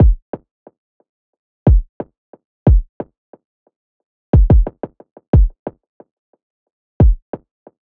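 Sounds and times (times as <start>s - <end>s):
wet kick drum: 0.0s - 0.2s, 1.7s - 1.9s, 2.7s - 2.9s, 4.4s - 5.6s, 7.0s - 7.2s.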